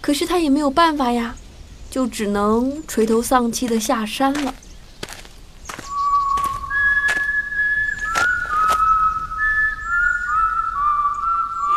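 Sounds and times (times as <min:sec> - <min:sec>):
speech: 0:00.0 - 0:04.6
melodious whistling: 0:05.7 - 0:11.7.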